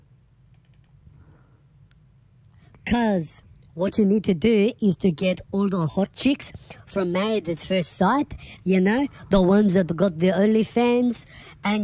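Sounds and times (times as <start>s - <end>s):
soft clicks of typing on a computer keyboard: 0.5s - 1.0s
speech: 2.9s - 11.8s.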